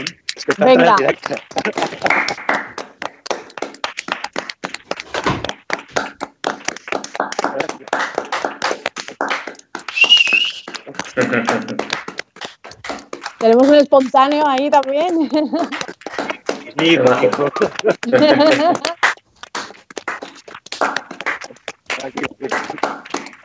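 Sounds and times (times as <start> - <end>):
speech: 0.0 - 2.5, 11.2 - 11.9, 13.4 - 15.8, 16.8 - 18.9
laughter: 0.0 - 2.6, 7.3 - 8.3, 10.7 - 12.0, 14.8 - 19.0, 22.0 - 22.9
people cheering from balconies: 0.0 - 2.8, 6.8 - 12.0, 13.2 - 19.0, 20.8 - 23.4
many people clapping from surrounding balconies: 0.0 - 23.4.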